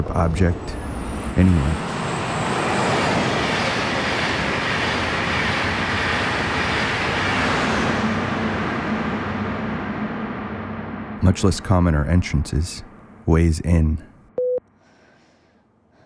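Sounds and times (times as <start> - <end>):
train wheels rumbling on track: 0.0 - 12.1
speech: 0.2 - 0.8, 1.4 - 2.0, 11.2 - 14.1.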